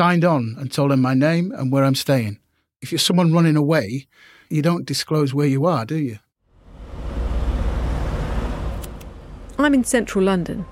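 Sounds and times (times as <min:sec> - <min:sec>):
speech: 0:00.0 - 0:06.2, 0:09.6 - 0:10.6
busy street traffic in central London: 0:06.6 - 0:10.6.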